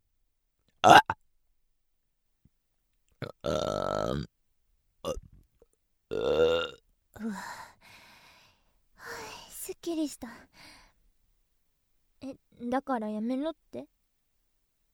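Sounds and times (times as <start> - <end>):
person burping: 0.8 - 1.2, 3.2 - 4.3, 5.0 - 5.4, 6.1 - 6.8
speech: 0.8 - 1.2, 12.7 - 14.0
person breathing: 7.2 - 9.6, 10.3 - 11.0.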